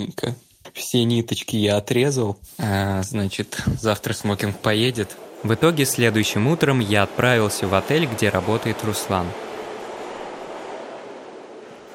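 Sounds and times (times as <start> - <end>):
speech: 0.0 - 9.5
heavy rain pouring outdoors: 3.2 - 11.9.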